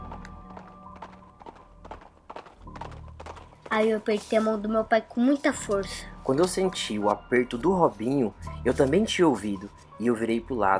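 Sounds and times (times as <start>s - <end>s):
heavy hoofed footsteps of a large animal walking: 0.0s - 4.9s
speech: 3.7s - 10.7s.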